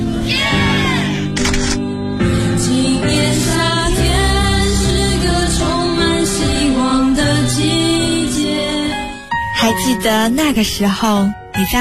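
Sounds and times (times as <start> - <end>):
music: 0.0 - 11.7
camera shutter click for a graduation photo: 1.4 - 1.8
speech: 10.0 - 11.7.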